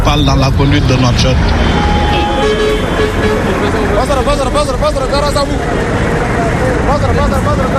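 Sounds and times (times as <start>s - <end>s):
constant engine rumble of street traffic: 0.0s - 7.7s
speech: 0.1s - 1.9s, 3.0s - 7.7s
car horn honking in busy street traffic: 1.5s - 4.6s.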